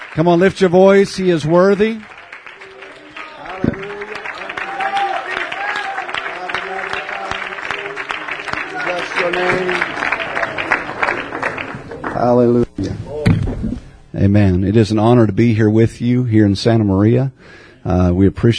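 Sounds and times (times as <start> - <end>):
audience clapping and applauding: 0.0 - 12.6
speech: 0.2 - 2.2, 12.2 - 12.6, 14.3 - 18.5.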